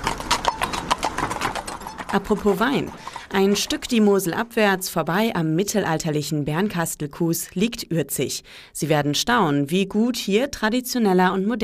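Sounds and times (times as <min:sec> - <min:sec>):
horse-drawn carriage rolling along a trail: 0:00.0 - 0:04.3
horse hooves clip-clopping at a trot pulling a carriage: 0:00.0 - 0:04.9
speech: 0:02.1 - 0:11.6.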